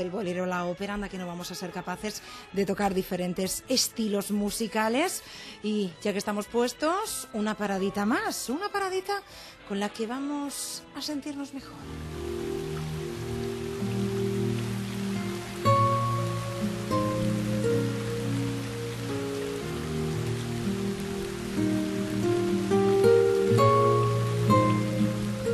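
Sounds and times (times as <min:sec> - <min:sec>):
speech: 0:00.0 - 0:12.3
soft sustained musical tones: 0:11.3 - 0:25.5
rain sound effect of drops on a surface: 0:11.8 - 0:25.5.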